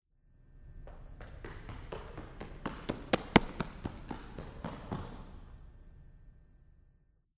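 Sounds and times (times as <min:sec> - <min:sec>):
footsteps running by in a room: 0:00.8 - 0:05.6.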